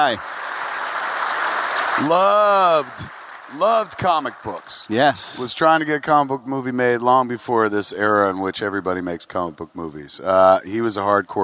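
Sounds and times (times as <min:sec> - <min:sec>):
speech: 0:00.0 - 0:00.4, 0:02.0 - 0:11.4
applause: 0:00.0 - 0:05.4.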